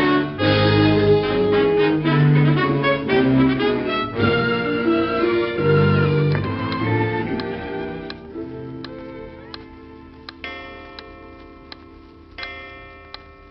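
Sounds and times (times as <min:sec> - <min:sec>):
soft musical drone: 0:00.0 - 0:13.4
clock ticking: 0:06.3 - 0:13.4.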